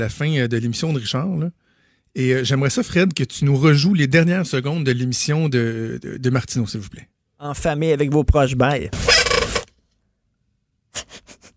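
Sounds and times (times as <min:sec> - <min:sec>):
speech: 0:00.0 - 0:09.2
chair creaking and squeaking: 0:09.0 - 0:09.7.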